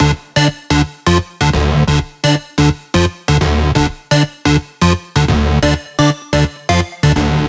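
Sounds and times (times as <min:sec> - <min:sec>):
synth in root D: 0:00.0 - 0:07.4.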